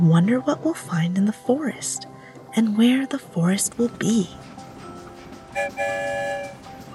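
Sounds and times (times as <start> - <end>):
speech: 0.0 - 4.6, 5.6 - 6.6
train whistle blowing: 5.6 - 6.7.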